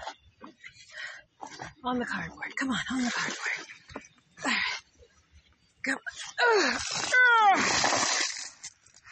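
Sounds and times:
speech: 1.9 - 3.8
water pouring out of a container: 2.9 - 4.0, 6.2 - 8.8.

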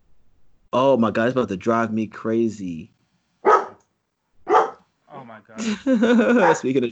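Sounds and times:
speech: 0.7 - 3.0, 5.4 - 6.8
dog barking: 3.4 - 3.8, 4.4 - 4.8, 6.2 - 6.7
laughter: 5.2 - 6.8.

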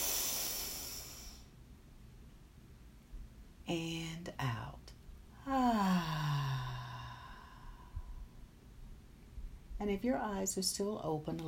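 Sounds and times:
deep cleansing breath in: 0.0 - 1.5, 5.8 - 8.4
speech: 3.7 - 4.8, 9.8 - 11.4.

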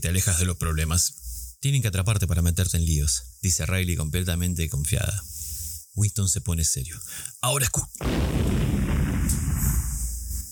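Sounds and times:
speech: 0.0 - 5.4, 6.0 - 8.6
large explosion: 8.0 - 10.4.

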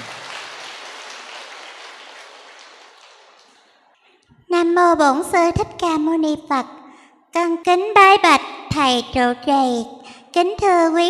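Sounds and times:
audience applause at a Buddhist temple gathering: 0.0 - 4.0
speech: 4.6 - 6.8, 7.4 - 11.0.

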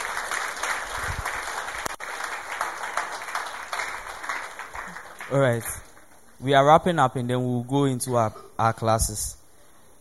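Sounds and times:
congregation applauding: 0.0 - 6.7
speech: 5.3 - 5.8, 6.4 - 9.4.

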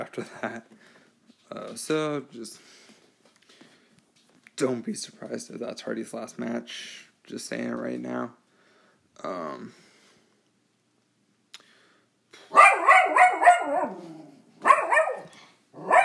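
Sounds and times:
speech: 0.0 - 2.8, 4.6 - 8.4, 9.2 - 9.8
dog barking excitedly in high-pitched bursts: 12.5 - 16.0.

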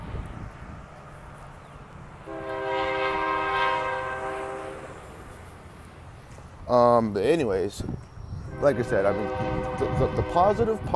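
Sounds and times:
train rumbling past: 0.0 - 10.9
multi-tone train horn blaring: 2.2 - 5.3, 8.5 - 10.8
speech: 6.7 - 10.9.

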